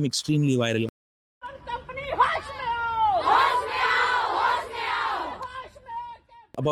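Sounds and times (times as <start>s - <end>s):
speech: 0.0s - 0.9s
crowd of protesters shouting slogans against a company: 1.4s - 6.5s.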